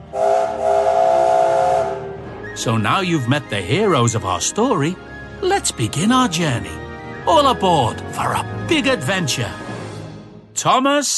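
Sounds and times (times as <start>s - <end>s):
big steam locomotive whistle blast: 0.0s - 2.6s
speech: 2.6s - 9.6s, 10.6s - 11.1s.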